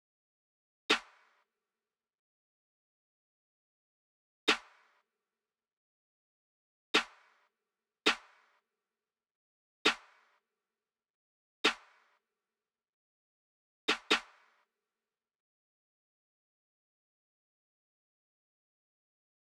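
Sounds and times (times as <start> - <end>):
snare drum: 4.5 - 4.9, 8.1 - 8.5, 13.9 - 14.5.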